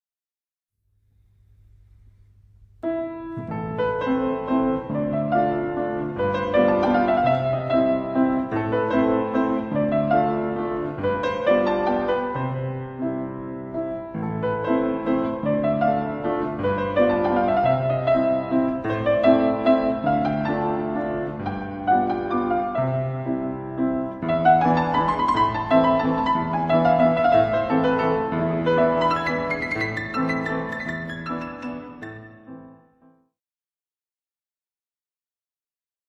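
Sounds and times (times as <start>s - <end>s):
fortepiano playing: 2.8s - 33.2s.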